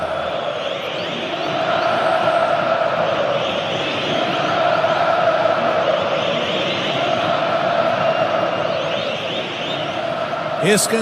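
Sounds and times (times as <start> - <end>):
football stadium crowd of supporters roaring and chanting: 0.0 - 10.9.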